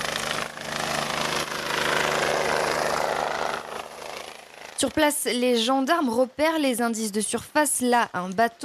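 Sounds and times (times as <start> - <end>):
helicopter rotor beating in a fast steady thump: 0.0 - 5.9
speech: 4.8 - 8.6.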